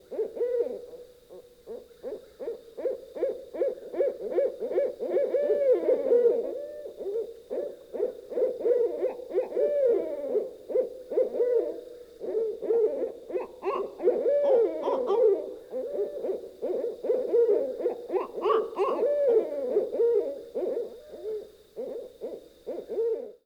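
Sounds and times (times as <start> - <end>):
owls hooting: 0.0 - 23.4.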